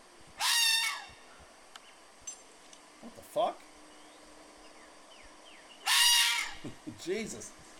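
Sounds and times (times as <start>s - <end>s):
angry red fox scream played back: 0.4s - 1.2s, 5.8s - 6.6s
speech: 3.4s - 3.6s, 6.6s - 7.7s
laughter: 6.6s - 7.1s.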